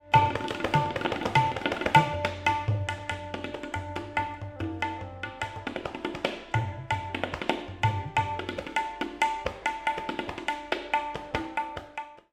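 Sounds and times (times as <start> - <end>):
tabla drumming: 0.0 - 12.3.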